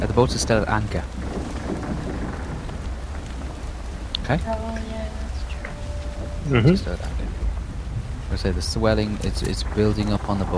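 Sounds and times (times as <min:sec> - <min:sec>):
speech: 0:00.0 - 0:01.2, 0:04.3 - 0:05.0, 0:06.4 - 0:07.4, 0:08.3 - 0:10.5
heavy rain hissing during a storm over a boat at anchor: 0:00.0 - 0:10.5
thunder rumbling during a storm over a boat at anchor: 0:00.0 - 0:10.5.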